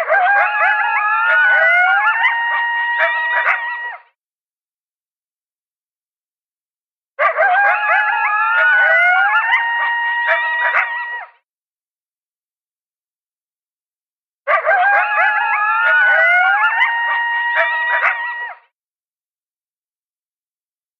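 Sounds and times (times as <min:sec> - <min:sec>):
coyotes yipping and howling: 0:00.0 - 0:04.1, 0:07.2 - 0:11.4, 0:14.5 - 0:18.6.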